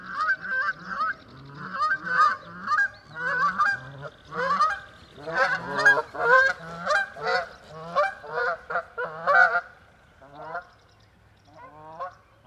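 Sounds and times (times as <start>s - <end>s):
several Canada geese honking: 0.1s - 9.7s.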